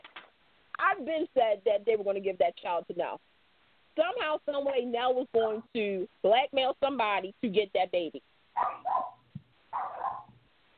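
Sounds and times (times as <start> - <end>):
speech: 0.9 - 3.3, 4.0 - 8.8
dog barking: 8.6 - 10.4.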